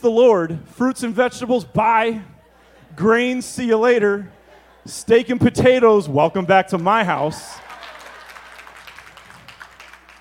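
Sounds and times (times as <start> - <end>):
speech: 0.0 - 2.3, 2.9 - 7.6
laughter: 2.0 - 9.6
audience clapping: 6.4 - 10.1.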